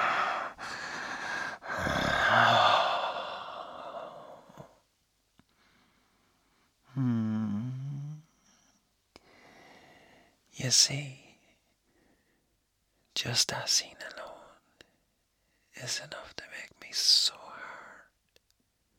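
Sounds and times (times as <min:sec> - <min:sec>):
drawn-out voiced sigh: 0:00.0 - 0:04.8, 0:06.9 - 0:08.2
heavy breathy exhalations: 0:00.0 - 0:04.8
speech: 0:10.7 - 0:11.2, 0:13.2 - 0:14.2, 0:15.8 - 0:17.2.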